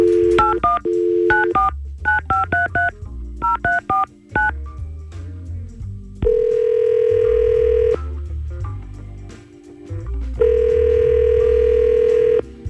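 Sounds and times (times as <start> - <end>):
telephone touch-tone dialing beeps: 0.0 - 4.5, 6.2 - 8.0, 10.4 - 12.4.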